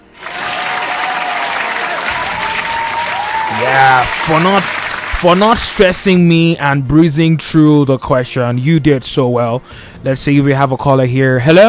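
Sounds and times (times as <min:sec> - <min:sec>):
applause for a quiz game contestant: 0:00.0 - 0:06.0
speech: 0:03.6 - 0:11.6.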